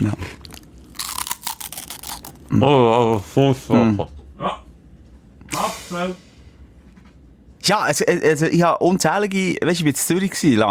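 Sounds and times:
crunching while chewing a crisp rusk: 0.3 - 2.4
speech: 2.5 - 4.2, 5.9 - 6.3, 7.7 - 10.6.

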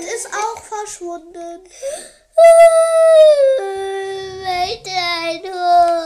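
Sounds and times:
speech: 0.0 - 3.8
child howling like a dog: 2.4 - 4.2.

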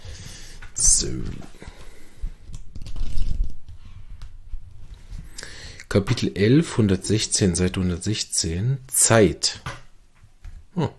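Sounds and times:
speech: 1.0 - 1.6, 5.9 - 9.8, 10.8 - 10.9
pages of a book flipped through: 1.1 - 5.4.

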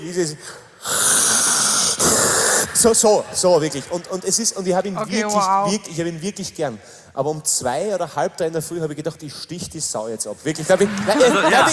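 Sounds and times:
speech: 0.0 - 0.7, 2.8 - 11.7
voice imitating loud snoring: 0.8 - 2.9
laughter: 10.6 - 11.7.

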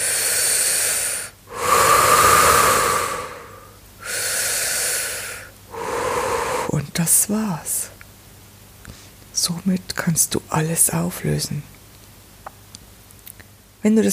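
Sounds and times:
deep belly breathing: 0.0 - 6.8
speech: 7.3 - 7.9, 9.5 - 11.8, 13.8 - 14.1.

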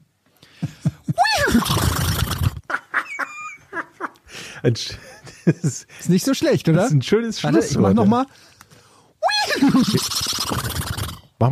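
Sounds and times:
laughter: 0.6 - 1.5, 2.6 - 5.9, 9.3 - 10.2
person imitating a horse whinny: 1.2 - 2.6, 9.2 - 11.3
speech: 4.6 - 8.5, 9.8 - 10.6.

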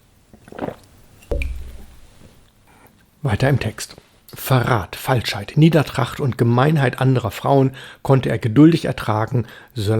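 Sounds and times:
gulp and swallow of water: 0.3 - 2.3
sipping water: 0.4 - 2.9
speech: 3.2 - 9.9.

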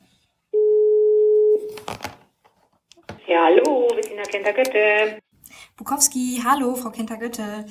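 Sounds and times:
steady telephone ringback tone as a phone call is placed: 0.6 - 1.6
speech: 3.4 - 5.2, 5.8 - 7.6.

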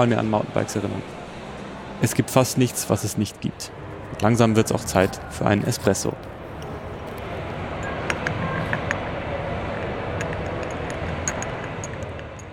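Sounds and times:
speech: 0.0 - 1.2, 2.0 - 6.3
murmur of many voices in a large indoor trade fair hall: 0.0 - 12.3
clinks and knocks: 9.8 - 12.5.

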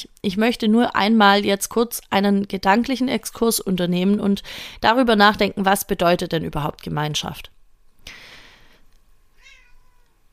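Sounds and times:
speech: 0.0 - 8.2
faint hiss: 0.0 - 10.3
cat meowing: 9.4 - 10.2.

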